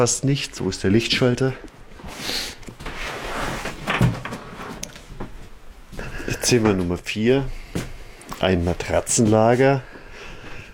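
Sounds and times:
speech: 0.0 - 2.6, 6.4 - 7.6, 8.4 - 9.9
door creaking open: 3.6 - 4.8.

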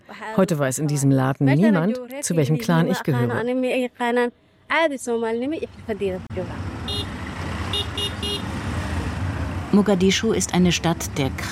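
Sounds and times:
dense street traffic of motorized three-wheelers, trucks and cars rumbling at a Mogadishu junction: 0.0 - 11.5
speech: 0.2 - 6.7, 9.7 - 11.5
car horns tooting in short bursts: 6.8 - 8.7.

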